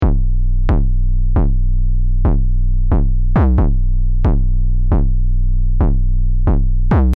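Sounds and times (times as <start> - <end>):
808 bassline: 0.0 - 7.1.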